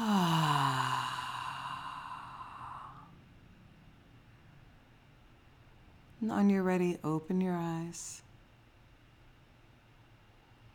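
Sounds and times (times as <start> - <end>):
long slow voiced exhale during a relaxation exercise: 0.0 - 3.1
speech: 6.2 - 8.2.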